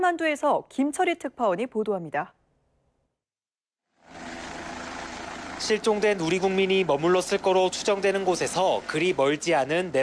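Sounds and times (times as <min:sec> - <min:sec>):
speech: 0:00.0 - 0:02.4, 0:05.6 - 0:10.0
military helicopter engine roar taking off: 0:03.9 - 0:10.0.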